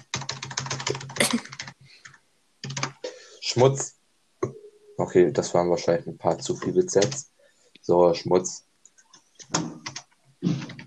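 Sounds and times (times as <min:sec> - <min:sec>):
typing a comment on a computer keyboard: 0:00.0 - 0:03.0, 0:07.0 - 0:07.2, 0:08.9 - 0:10.8
speech: 0:03.6 - 0:04.0, 0:05.0 - 0:07.3, 0:07.9 - 0:08.7.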